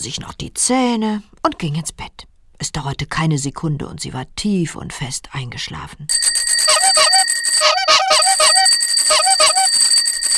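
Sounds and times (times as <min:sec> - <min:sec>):
speech: 0:00.0 - 0:07.1
bicycle bells ringing: 0:06.1 - 0:10.3
horns honking: 0:06.6 - 0:09.9.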